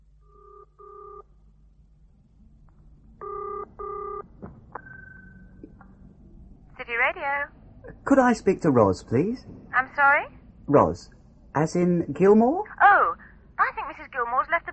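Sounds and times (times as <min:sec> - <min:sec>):
low steady hum: 0:00.0 - 0:14.7
telephone ringing tone down the line during an outgoing call from a phone box: 0:00.2 - 0:01.3, 0:03.2 - 0:04.3
speech: 0:07.1 - 0:13.0.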